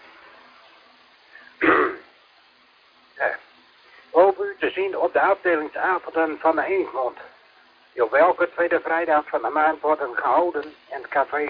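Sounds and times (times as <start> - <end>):
person clearing throat from a tickle in the throat: 1.6 - 2.1
speech: 4.6 - 7.3, 8.0 - 11.4.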